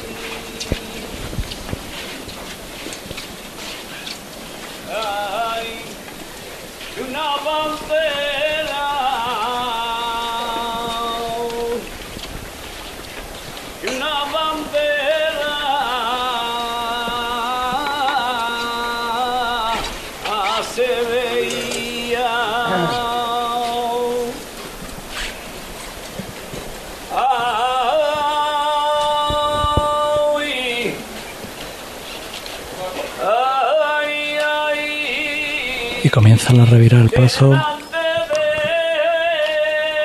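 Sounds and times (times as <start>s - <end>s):
constant hiss of street ambience: 0.0s - 40.0s
lone voice singing a saeta live in the street: 4.9s - 6.1s, 6.9s - 11.9s, 13.8s - 24.4s, 27.1s - 31.2s, 33.2s - 40.0s
speech: 36.5s - 37.8s.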